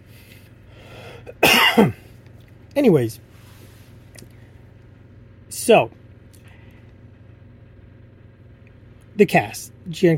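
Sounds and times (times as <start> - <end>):
speech: 1.3 - 2.0, 2.8 - 3.3, 5.6 - 6.0, 9.2 - 10.1
person coughing: 1.3 - 2.1.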